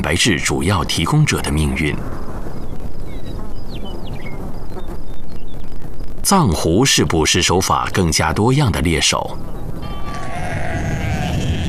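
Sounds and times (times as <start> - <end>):
speech: 0.1 - 2.2, 6.2 - 9.7
flock of sheep bleating on a high alpine grassland: 9.8 - 11.6.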